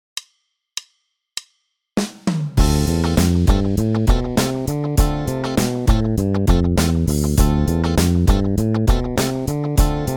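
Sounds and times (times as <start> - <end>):
bass playing Dorian mode exercises: 2.6 - 10.1.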